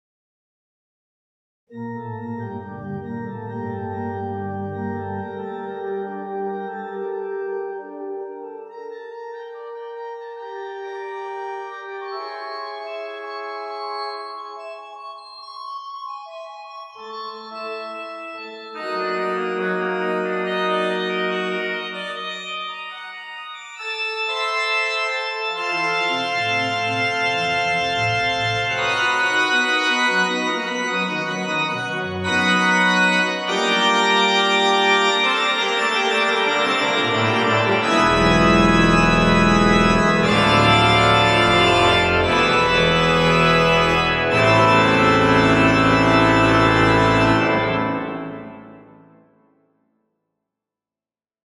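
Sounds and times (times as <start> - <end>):
concert organ playing: 1.7 - 49.2.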